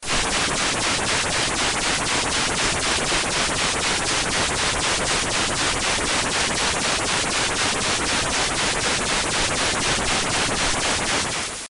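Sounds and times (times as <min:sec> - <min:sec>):
strange static: 0:00.1 - 0:11.6.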